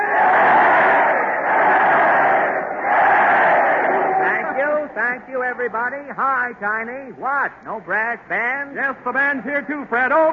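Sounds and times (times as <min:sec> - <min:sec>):
large crowd at a train depot cheering for a man arriving by train: 0:00.0 - 0:05.3
speech: 0:05.1 - 0:10.3.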